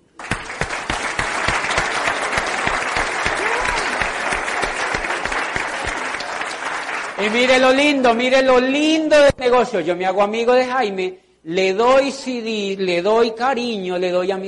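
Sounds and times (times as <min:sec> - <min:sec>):
audience applause: 0:00.0 - 0:07.8
crowd murmur: 0:00.3 - 0:06.6
speech: 0:07.2 - 0:14.4.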